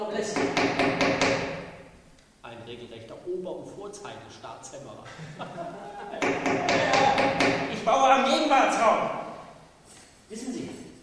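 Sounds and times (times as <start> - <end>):
hammer strikes with ringing resonant decay: 0.3 - 1.8, 6.2 - 7.8
speech: 2.7 - 9.2
laughter: 5.0 - 7.2.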